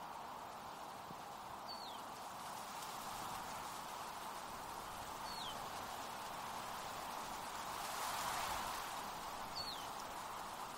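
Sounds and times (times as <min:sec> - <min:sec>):
wind rushing through trees and fields: 0:00.0 - 0:10.7.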